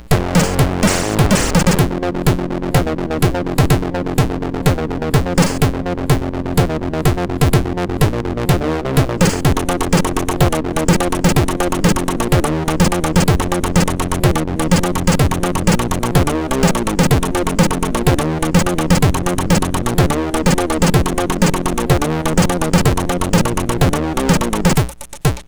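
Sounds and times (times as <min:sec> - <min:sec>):
heavy chiptune intro music on a MOS6581R2 sound chip: 0:00.2 - 0:05.9, 0:06.6 - 0:25.1.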